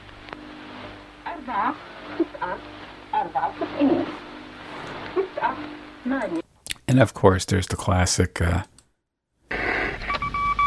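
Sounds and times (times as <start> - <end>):
steady hiss of radio static: 0.0 - 6.4
speech: 1.5 - 8.7
short high Morse code beeps: 10.0 - 10.6.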